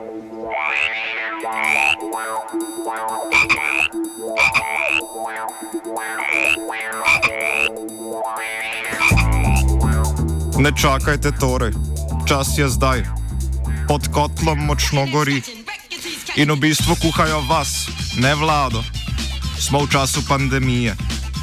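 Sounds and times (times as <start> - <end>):
chorus of frogs croaking: 0.0 - 10.6
speech: 2.4 - 4.3, 10.6 - 13.2, 13.9 - 15.6, 16.4 - 18.9, 19.6 - 21.0.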